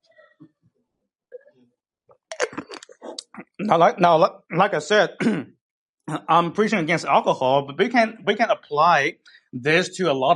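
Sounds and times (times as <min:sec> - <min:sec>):
slurping and swallowing a sip of grape juice: 0:02.1 - 0:03.6
soft mouth clicks: 0:02.1 - 0:03.6
speech: 0:03.6 - 0:05.5, 0:06.1 - 0:10.3.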